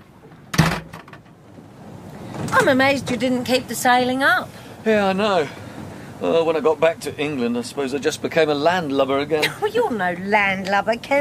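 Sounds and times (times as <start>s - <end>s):
door pushed shut: 0.3s - 1.4s
speech: 2.6s - 5.6s, 6.2s - 11.1s.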